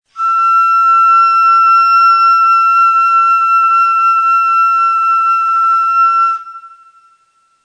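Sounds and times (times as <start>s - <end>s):
ney flute: 0.1s - 7.6s.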